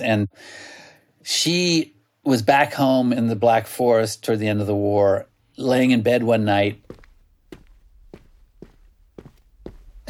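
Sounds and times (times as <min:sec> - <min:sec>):
speech: 0:00.0 - 0:06.9
footsteps on a hard sidewalk: 0:06.5 - 0:10.0.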